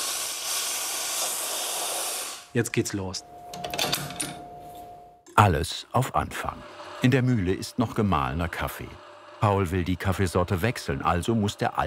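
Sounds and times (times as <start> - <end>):
espresso machine steam wand blowing off steam: 0.0 - 2.6, 5.9 - 11.8
speech: 2.5 - 3.4, 5.4 - 11.8.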